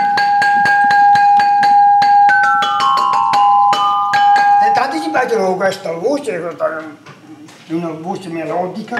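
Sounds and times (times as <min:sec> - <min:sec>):
small glass bells ringing: 0:00.0 - 0:05.1
speech: 0:05.7 - 0:07.1, 0:07.7 - 0:08.9.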